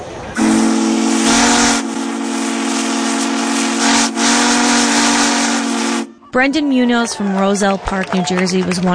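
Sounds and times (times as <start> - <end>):
steam locomotive whistle blast at a national historic site in Scranton: 0.4 - 6.4
speech: 6.3 - 8.9.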